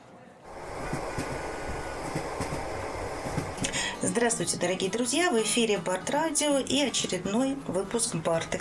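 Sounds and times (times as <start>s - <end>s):
train wheels clacking on the rails: 0.5s - 4.8s
departing train rolling rumble: 0.5s - 5.0s
speech: 3.8s - 8.5s.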